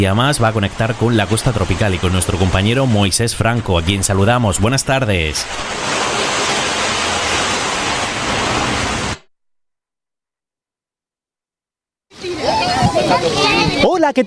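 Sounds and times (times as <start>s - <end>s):
speech: 0.0s - 6.1s
sea surf washing at the shore: 0.0s - 9.3s, 12.1s - 14.1s.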